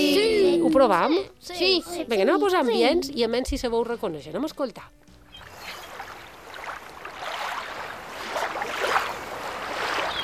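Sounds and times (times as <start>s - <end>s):
speech: 0.7s - 5.0s
surf waves on a beach: 5.4s - 10.2s.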